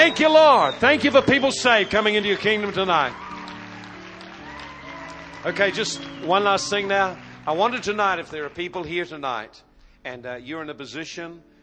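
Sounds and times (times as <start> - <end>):
speech: 0.0 - 3.3, 5.4 - 11.5
large church audience clapping: 0.0 - 9.3
sustained low musical tones: 0.0 - 10.5.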